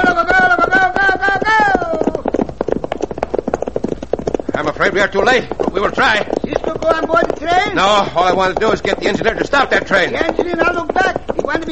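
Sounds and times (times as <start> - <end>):
horse galloping hoofbeats: 0.0 - 11.6
speech: 5.0 - 11.6.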